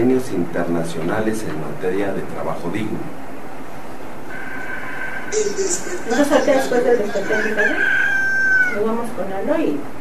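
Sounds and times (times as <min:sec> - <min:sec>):
speech: 0:00.0 - 0:03.3, 0:05.3 - 0:08.0, 0:08.7 - 0:10.0
rooster crowing: 0:04.3 - 0:09.1.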